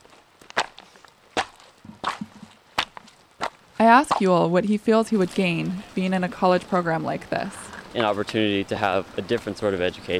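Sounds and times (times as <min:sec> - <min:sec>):
students stomping rocks into a trail: 0:00.0 - 0:04.4
speech: 0:03.8 - 0:10.1.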